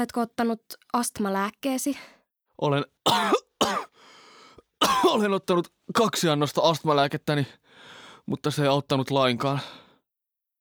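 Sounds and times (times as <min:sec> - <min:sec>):
speech: 0:00.0 - 0:03.8, 0:05.1 - 0:09.8
person coughing harshly during an asthma attack: 0:03.1 - 0:04.0, 0:04.8 - 0:05.3
faint breathy noise: 0:03.9 - 0:04.7, 0:07.6 - 0:08.3, 0:09.6 - 0:10.1.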